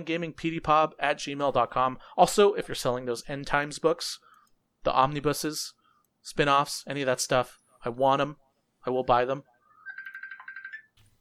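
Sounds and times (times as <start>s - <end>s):
speech: 0.0s - 9.5s
phone electronic ringtone: 9.7s - 11.0s.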